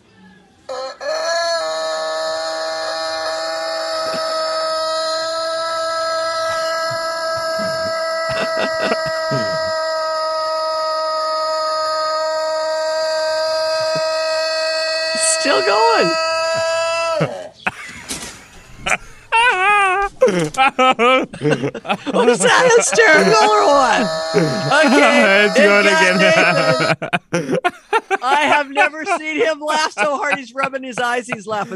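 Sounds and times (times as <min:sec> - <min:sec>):
rooster crowing: 0:00.7 - 0:17.6, 0:22.2 - 0:27.1
laughter: 0:02.7 - 0:10.8, 0:11.4 - 0:31.7
speech: 0:20.6 - 0:31.7.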